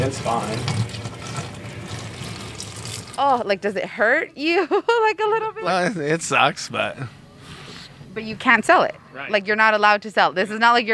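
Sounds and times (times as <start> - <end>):
speech: 0.0 - 1.4, 3.2 - 7.2, 8.2 - 10.9
milk past its sell-by date pouring down a sink drain: 0.0 - 3.2.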